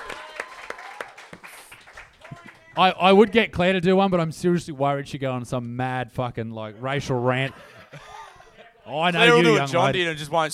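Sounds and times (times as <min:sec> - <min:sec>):
audience applause: 0:00.0 - 0:02.9
speech: 0:02.8 - 0:08.0, 0:08.9 - 0:10.5
laughter: 0:06.8 - 0:10.0.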